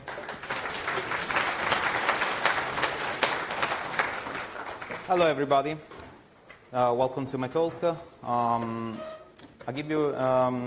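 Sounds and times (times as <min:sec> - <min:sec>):
audience applause: 0:00.0 - 0:05.2
speech: 0:05.1 - 0:05.9, 0:06.7 - 0:10.6.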